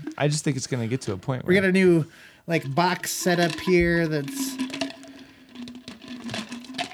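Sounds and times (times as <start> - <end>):
speech: 0.2 - 4.6
ice clattering into a container while making a cocktail: 2.6 - 6.9.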